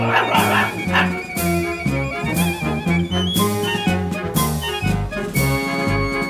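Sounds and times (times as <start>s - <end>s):
small dog barking: 0.0s - 1.2s
laughter: 0.0s - 6.2s
marching band playing a rhythmic tune: 0.0s - 6.2s.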